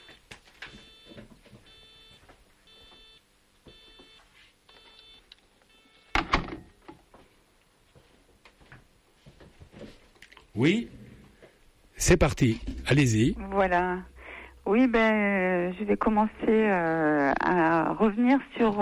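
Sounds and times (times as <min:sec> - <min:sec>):
telephone beeping in short electronic tones: 0:00.0 - 0:06.8
speech: 0:10.6 - 0:11.0, 0:12.0 - 0:14.1, 0:14.7 - 0:18.8.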